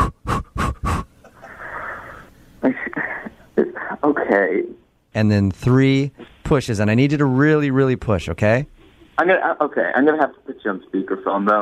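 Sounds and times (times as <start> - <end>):
person demonstrating quick forceful panting breaths: 0.0 - 2.3
speech: 4.3 - 11.5.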